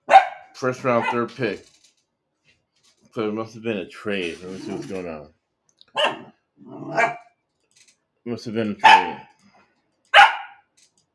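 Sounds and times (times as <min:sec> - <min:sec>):
dog barking excitedly: 0:00.0 - 0:01.3, 0:05.9 - 0:07.3, 0:08.8 - 0:09.3, 0:10.1 - 0:10.7
speech: 0:00.6 - 0:01.7, 0:03.2 - 0:05.4, 0:08.2 - 0:09.2.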